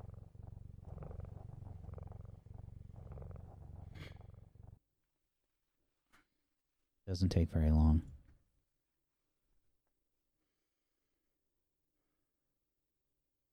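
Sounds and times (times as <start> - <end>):
cat purring: 0.0 - 4.8
speech: 7.1 - 8.1.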